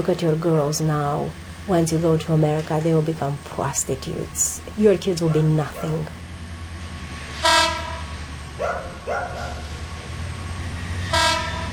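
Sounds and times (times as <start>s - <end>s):
speech: 0.0s - 6.2s
train rumbling as it starts moving: 0.0s - 11.7s
loud train horn blasts: 7.2s - 8.4s, 10.8s - 11.7s
short whistle-like honks: 7.4s - 8.2s, 11.0s - 11.7s.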